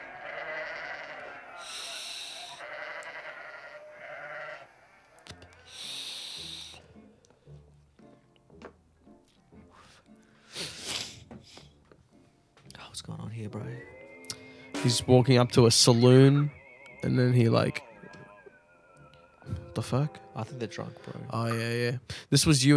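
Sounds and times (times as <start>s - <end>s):
flock of sheep bleating: 0.0s - 7.0s, 13.1s - 22.0s
speech: 13.4s - 14.0s, 14.8s - 17.9s, 19.9s - 22.7s.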